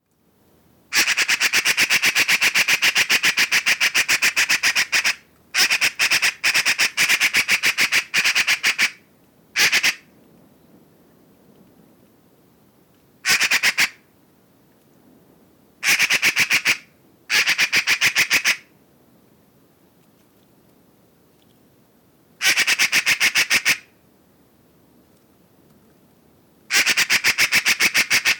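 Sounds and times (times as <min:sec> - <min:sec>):
Eurasian magpie Pica pica calling: 0:00.9 - 0:09.0, 0:09.6 - 0:10.1, 0:13.2 - 0:14.0, 0:15.8 - 0:18.7, 0:22.4 - 0:23.9, 0:26.7 - 0:28.3.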